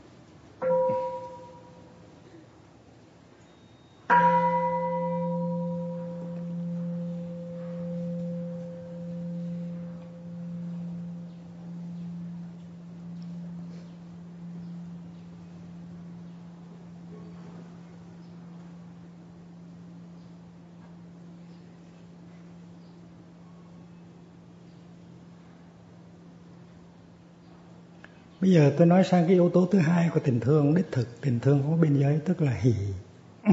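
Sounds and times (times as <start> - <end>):
meditation bell ringing with a deep resonant tone: 0.6 - 2.4, 3.4 - 33.0
speech: 28.4 - 33.5.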